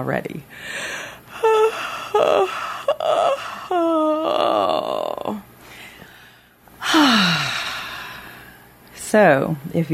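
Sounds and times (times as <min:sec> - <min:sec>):
speech: 0:00.0 - 0:03.8, 0:09.2 - 0:09.9
person yawning aloud on purpose: 0:01.4 - 0:05.4, 0:06.8 - 0:08.3.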